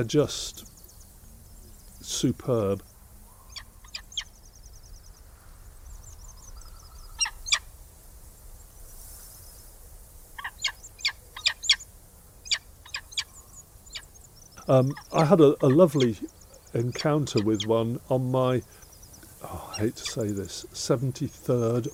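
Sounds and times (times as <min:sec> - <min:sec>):
speech: 0:00.0 - 0:00.7, 0:02.0 - 0:02.9, 0:14.7 - 0:18.8, 0:19.4 - 0:21.9
quiet steady outdoor hiss: 0:00.0 - 0:21.9
bird of prey calling in sharp yelps: 0:03.2 - 0:05.0, 0:05.9 - 0:07.7, 0:10.4 - 0:21.9.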